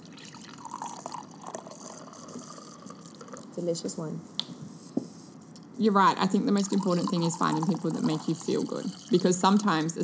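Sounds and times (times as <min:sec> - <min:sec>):
drink being poured: 0:00.0 - 0:03.6, 0:06.4 - 0:09.8
speech: 0:03.6 - 0:04.4, 0:05.8 - 0:10.0.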